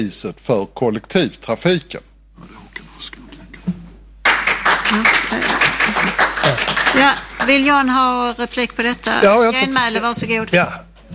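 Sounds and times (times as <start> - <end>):
speech: 0.0 - 2.1, 3.0 - 3.2, 4.9 - 10.9
faint murmuring: 2.4 - 3.7
audience clapping: 4.2 - 8.3.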